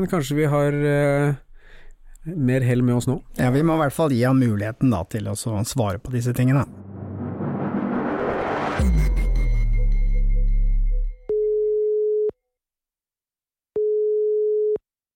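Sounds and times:
speech: 0.0 - 1.4, 2.2 - 6.8
dense noisy burst: 6.5 - 10.8
phone line ringing tone of an unanswered call: 11.3 - 12.4, 13.8 - 14.8.

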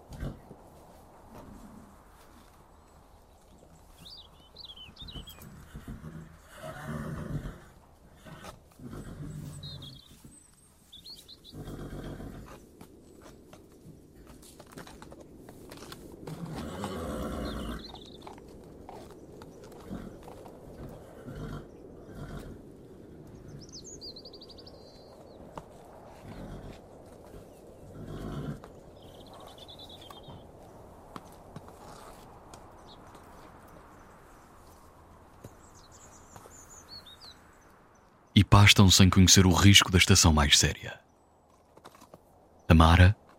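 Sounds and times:
horses snorting outdoors: 0.0 - 0.6, 5.2 - 10.2, 16.2 - 17.9, 18.9 - 22.7, 26.1 - 28.8
small birds chirping and tweeting: 2.4 - 7.0, 9.0 - 11.7, 17.3 - 18.4, 23.3 - 25.5, 35.4 - 41.4, 42.6 - 43.2
speech: 38.4 - 41.0, 42.8 - 43.2.

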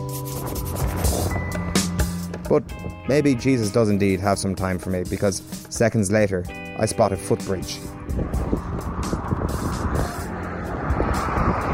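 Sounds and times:
steady loud traffic roar from a busy road: 0.0 - 3.0, 6.6 - 11.7
cars speeding past on a dual carriageway: 0.3 - 2.4, 7.8 - 11.7
speech: 2.5 - 8.4.

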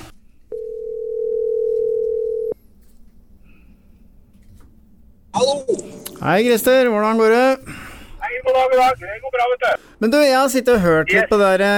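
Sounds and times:
telephone dial tone while placing a call: 0.5 - 2.6
speech: 6.2 - 7.7, 8.7 - 11.7.

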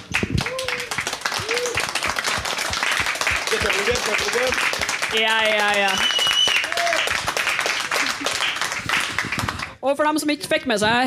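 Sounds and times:
audience applause for a band: 0.0 - 9.8
cheers and whoops: 0.4 - 2.5, 5.6 - 7.3
speech: 4.1 - 6.2, 9.8 - 11.0.

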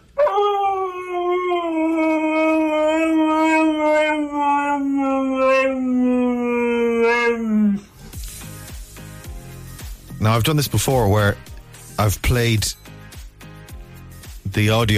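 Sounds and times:
husky howling: 0.2 - 8.0
speech: 10.4 - 12.8, 14.6 - 14.9.

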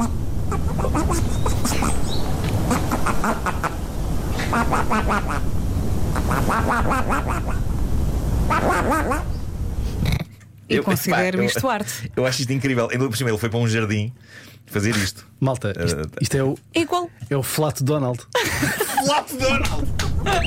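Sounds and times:
raspy duck-like flatulence quacks from a man lying on the ground in a garden: 0.0 - 5.4, 6.1 - 7.6, 8.5 - 9.3, 9.9 - 10.4
steady noisy outdoor background in a garden: 0.0 - 20.4
speech: 10.7 - 20.4
laughter: 18.4 - 20.4.

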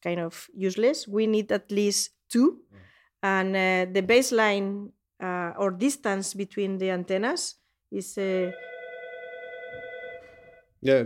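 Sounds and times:
speech: 0.0 - 8.7, 10.8 - 11.0
emergency telephone ringing with buzzing electronic tone: 8.3 - 10.8.

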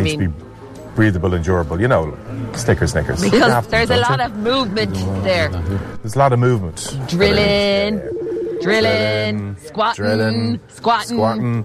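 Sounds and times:
speech: 0.0 - 11.6
loud melodic phone ringtone: 7.3 - 9.2.

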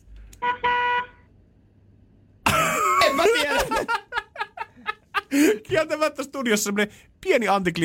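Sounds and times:
car horn honking: 0.4 - 1.3
laughter: 2.5 - 5.8
speech: 5.3 - 7.8.

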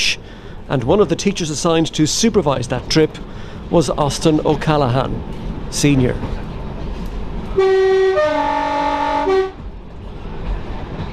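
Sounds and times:
speech: 0.7 - 6.4
train horn blast: 7.5 - 9.7.

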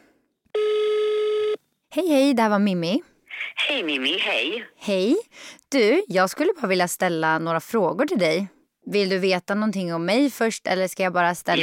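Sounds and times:
electronic ringback tone on a call to a paid fortune-telling line: 0.6 - 1.6
speech: 2.0 - 11.6.

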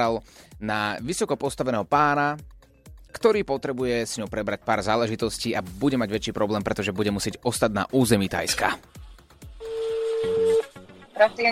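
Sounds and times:
speech: 0.0 - 9.0, 11.2 - 11.5
telephone call dialing tone: 9.6 - 10.7.

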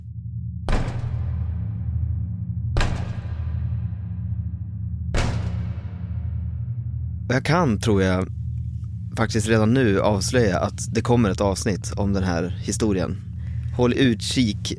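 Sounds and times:
steady low hum: 0.0 - 14.7
heavy slow knocks: 2.8 - 4.0, 5.2 - 6.7
speech: 7.3 - 8.4, 9.2 - 14.7.

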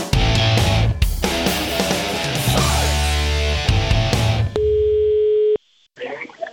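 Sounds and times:
busy music: 0.0 - 4.6.

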